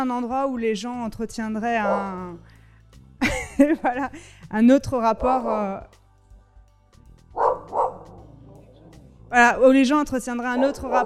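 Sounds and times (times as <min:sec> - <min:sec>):
speech: 0:00.0 - 0:02.5, 0:03.6 - 0:06.0, 0:09.3 - 0:11.0
dog barking: 0:01.8 - 0:02.4, 0:07.4 - 0:08.6, 0:10.5 - 0:11.0
laughter: 0:03.2 - 0:04.2.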